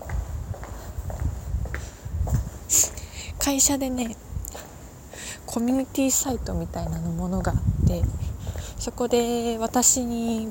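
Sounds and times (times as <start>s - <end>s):
footsteps of someone walking toward a train station: 0.0s - 3.1s, 8.0s - 10.4s
speech: 2.7s - 4.2s, 5.5s - 8.2s, 8.8s - 10.4s.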